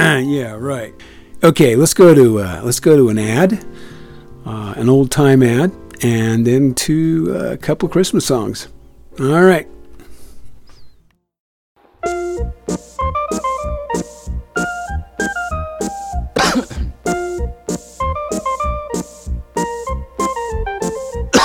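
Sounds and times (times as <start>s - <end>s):
speech: 0.0s - 9.7s
bright melodic tune: 12.0s - 21.4s
short coughs: 16.4s - 17.0s
throat clearing: 16.4s - 17.0s.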